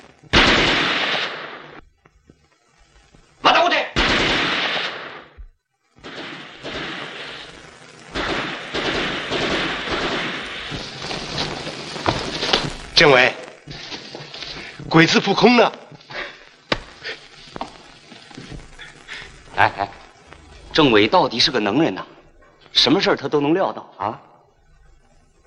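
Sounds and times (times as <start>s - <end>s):
gunfire in a wartime ambush: 0.3s - 1.8s, 3.9s - 14.7s
speech: 13.0s - 13.3s, 15.0s - 15.8s, 20.8s - 22.1s, 22.8s - 24.3s.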